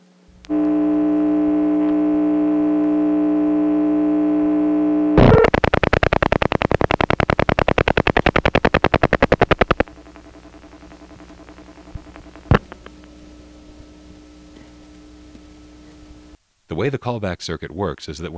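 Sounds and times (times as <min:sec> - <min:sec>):
steady buzzing telephone line hum: 0:00.4 - 0:16.4
fast even train of loud ticks: 0:05.6 - 0:10.3
speech: 0:16.8 - 0:18.3.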